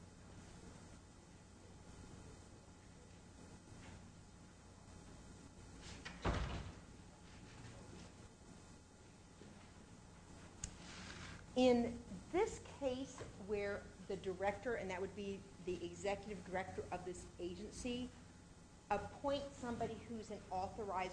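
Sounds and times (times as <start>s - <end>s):
door swinging shut with a solid thud: 6.0s - 6.9s
speech: 11.6s - 18.2s, 18.9s - 21.1s.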